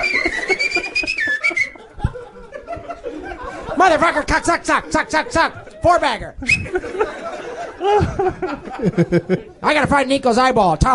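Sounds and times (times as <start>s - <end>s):
person whistling a sustained wavering tone: 0.0s - 1.8s, 6.4s - 6.8s
people chuckling: 0.0s - 9.6s
speech: 3.8s - 10.9s.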